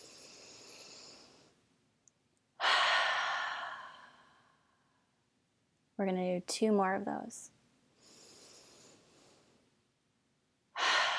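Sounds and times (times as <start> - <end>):
deep breath in through nose: 0.0 - 1.6, 2.6 - 4.6, 8.0 - 9.6, 10.8 - 11.1
speech: 6.0 - 7.6.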